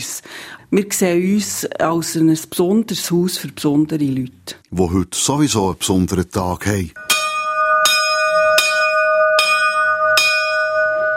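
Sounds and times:
speech: 0:00.1 - 0:07.1
bell ringing to call for lunch: 0:07.0 - 0:11.1.

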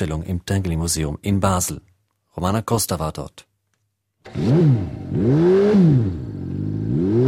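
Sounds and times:
speech: 0:00.0 - 0:03.5, 0:04.2 - 0:06.4, 0:07.0 - 0:07.2
loud car engine revving: 0:04.2 - 0:07.2.

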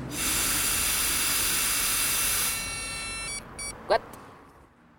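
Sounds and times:
person blowing hard into a police breathalyzer: 0:00.1 - 0:01.6
thin high tone: 0:00.1 - 0:03.7
speech: 0:03.9 - 0:04.2.

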